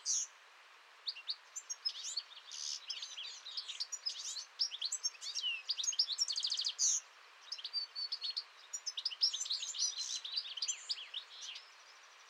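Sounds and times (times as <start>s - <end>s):
European goldfinch song of tinkling twitters and trills: 0.0s - 0.3s, 1.0s - 12.2s.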